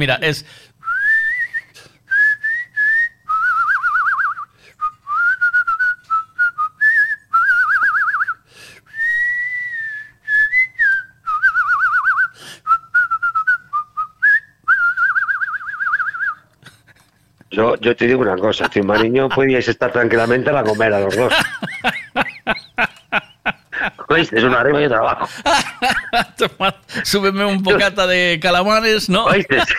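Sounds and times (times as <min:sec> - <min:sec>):
speech: 0:00.0 - 0:00.8, 0:17.8 - 0:21.7, 0:24.2 - 0:29.7
person whistling a song: 0:00.9 - 0:16.4
laughter: 0:18.1 - 0:28.0, 0:29.2 - 0:29.7.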